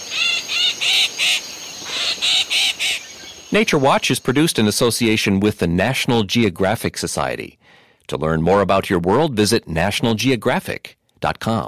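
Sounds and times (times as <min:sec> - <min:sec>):
yellow-headed blackbird calling with harsh buzzy grating notes: 0:00.0 - 0:04.3
speech: 0:03.5 - 0:11.6.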